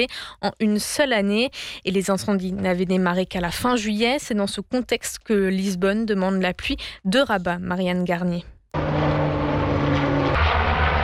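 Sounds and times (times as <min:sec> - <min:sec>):
speech: 0:00.0 - 0:08.5
Canadair amphibious water-bomber firefighting aircraft propeller drone: 0:08.8 - 0:11.0.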